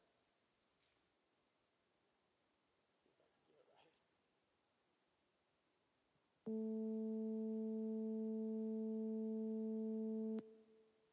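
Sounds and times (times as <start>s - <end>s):
two pure tones an octave apart: 6.5s - 10.9s.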